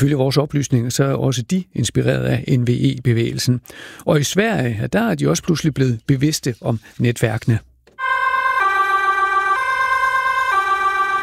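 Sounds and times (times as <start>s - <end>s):
speech: 0.0s - 7.7s
two-tone emergency vehicle siren: 8.0s - 11.2s.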